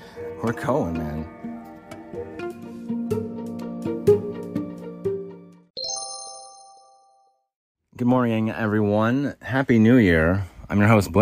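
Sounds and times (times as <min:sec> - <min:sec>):
speech: 0:00.4 - 0:01.5, 0:08.0 - 0:11.2
hot chocolate maker electronic chime melody: 0:05.8 - 0:07.5.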